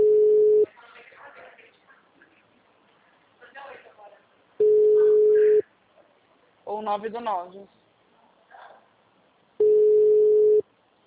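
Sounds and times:
telephone busy signal: 0:00.0 - 0:00.6, 0:04.6 - 0:05.6, 0:09.6 - 0:10.6
speech: 0:06.8 - 0:07.8.

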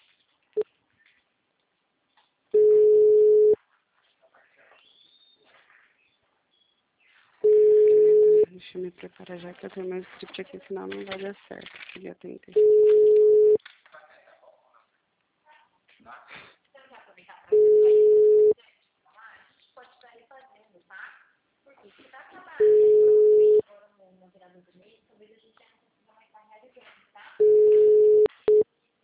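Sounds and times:
telephone busy signal: 0:02.6 - 0:03.6, 0:07.4 - 0:08.5, 0:12.6 - 0:13.6, 0:17.5 - 0:18.6, 0:22.6 - 0:23.6, 0:27.4 - 0:28.6
speech: 0:09.0 - 0:13.0.

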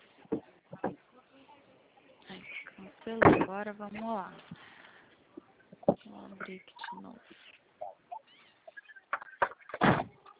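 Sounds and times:
speech: 0:03.1 - 0:04.7, 0:06.2 - 0:07.5
door slamming shut with a booming thud: 0:09.8 - 0:10.2.

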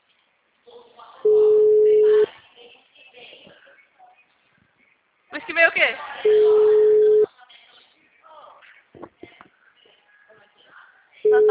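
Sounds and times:
soft voices murmuring: 0:00.0 - 0:11.5
telephone ringback tone while calling a client: 0:01.2 - 0:02.3, 0:06.3 - 0:07.3, 0:11.3 - 0:11.5
speech: 0:05.5 - 0:06.8.

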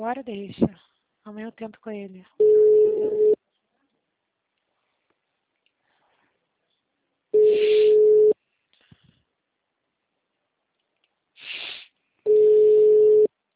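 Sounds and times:
speech: 0:00.0 - 0:03.4
telephone tone of a call failing to go through: 0:02.4 - 0:03.4, 0:07.4 - 0:08.4, 0:12.3 - 0:13.3.

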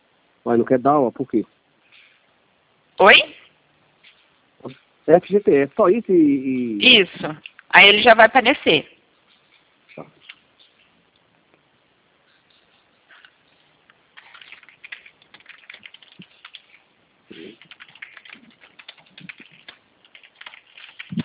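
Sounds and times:
speech: 0:00.4 - 0:01.6, 0:03.0 - 0:03.4, 0:04.6 - 0:08.9, 0:10.0 - 0:10.2
soft keyboard typing: 0:12.5 - 0:21.2.

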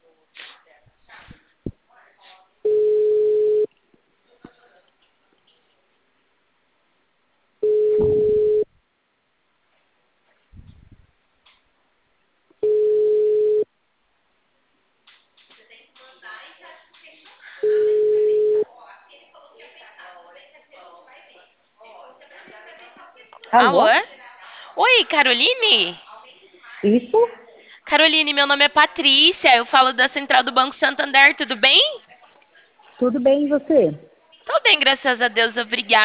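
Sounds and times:
telephone ringback tone while a call is placed: 0:02.7 - 0:03.7, 0:07.6 - 0:08.7, 0:12.6 - 0:13.6, 0:17.6 - 0:18.6
speech: 0:23.5 - 0:24.1, 0:24.8 - 0:26.0, 0:26.8 - 0:31.9, 0:33.0 - 0:34.1, 0:34.7 - 0:36.0.

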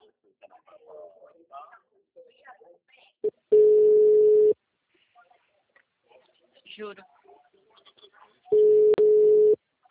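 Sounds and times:
telephone signal tone on an incoming call: 0:03.5 - 0:04.6, 0:08.6 - 0:09.6
speech: 0:06.8 - 0:07.2.

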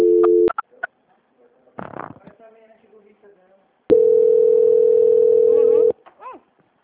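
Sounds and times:
telephone line tone during a call transfer: 0:00.0 - 0:00.5, 0:03.9 - 0:05.9.

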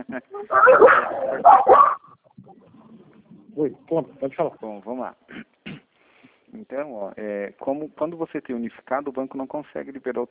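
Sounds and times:
speech: 0:00.1 - 0:01.9, 0:03.6 - 0:05.5, 0:06.6 - 0:10.2
dogs barking and yipping: 0:00.4 - 0:02.1.

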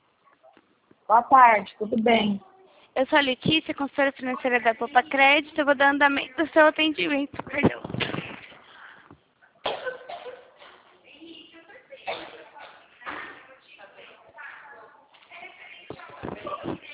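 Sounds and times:
speech: 0:01.1 - 0:07.8
coughing fit over a phone line: 0:09.6 - 0:10.8.

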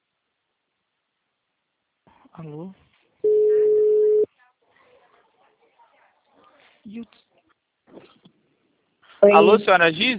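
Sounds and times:
speech: 0:02.4 - 0:02.9, 0:06.9 - 0:07.3, 0:09.2 - 0:10.1
telephone tone after a dropped call: 0:03.2 - 0:04.3.

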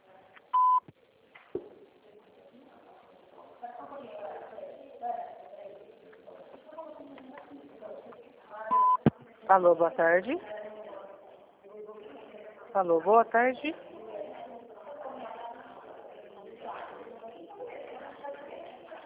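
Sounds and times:
answering machine beep: 0:00.6 - 0:00.8, 0:08.7 - 0:09.1
speech: 0:09.5 - 0:10.5, 0:12.8 - 0:13.9.

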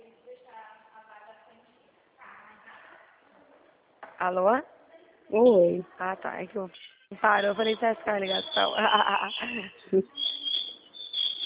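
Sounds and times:
speech: 0:04.2 - 0:04.7, 0:05.3 - 0:10.3
bird chirping: 0:06.6 - 0:11.4.

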